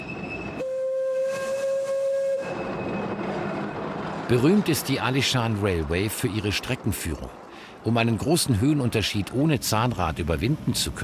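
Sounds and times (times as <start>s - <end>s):
steam locomotive whistle blast on a forest mountain railway: 0.0s - 3.2s
speech: 4.3s - 11.0s.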